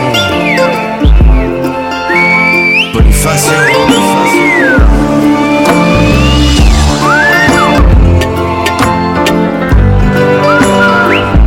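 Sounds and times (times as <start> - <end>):
instrumental music: 0.0 - 11.4
person whistling a sliding high melody in Silbo Gomero style: 0.1 - 7.8, 10.4 - 11.4.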